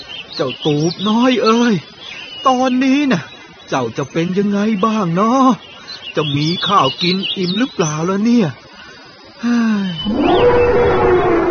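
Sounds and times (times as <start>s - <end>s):
speech: 0.4s - 8.6s, 9.4s - 11.1s
elephant trumpeting: 10.0s - 11.4s.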